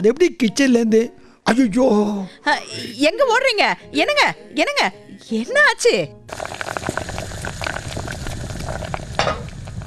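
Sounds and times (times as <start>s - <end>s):
speech: 0.0s - 6.8s
cabbage curry bubbling and sizzling on a stove while burning: 6.3s - 9.8s
crackles and pops of burning cabbage curry: 6.3s - 9.8s.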